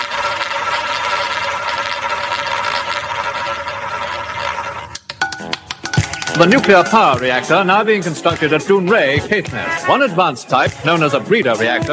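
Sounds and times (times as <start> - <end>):
roulette wheel machine spinning sound effect: 0.0 - 7.6
speech: 6.4 - 11.9.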